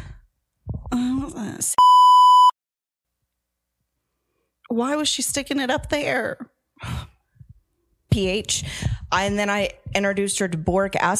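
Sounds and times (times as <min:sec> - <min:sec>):
speech: 0:01.2 - 0:02.2, 0:04.7 - 0:07.1, 0:08.2 - 0:11.1
steady electronic censor beep tone: 0:01.8 - 0:02.6.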